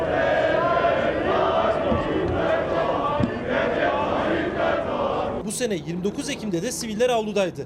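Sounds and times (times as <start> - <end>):
large crowd chanting slogans at a ceremony: 0.0 - 5.4
speech: 5.6 - 7.6.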